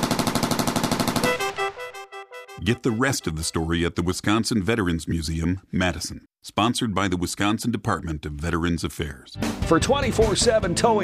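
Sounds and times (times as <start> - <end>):
automatic gunfire in a World War II battle: 0.0 - 1.7
speech: 2.6 - 11.0.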